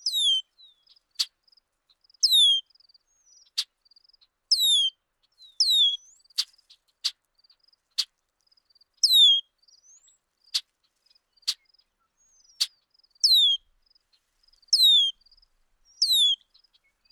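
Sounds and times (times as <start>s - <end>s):
bird soft twittering notes: 0.0s - 0.4s, 2.2s - 2.6s, 5.6s - 6.0s, 12.5s - 13.6s, 14.7s - 15.1s, 16.0s - 16.4s
bird song of high descending whistled phrases: 0.0s - 0.9s, 2.2s - 3.6s, 4.5s - 6.2s, 9.0s - 10.2s, 12.2s - 13.7s, 14.7s - 15.2s, 15.9s - 17.1s.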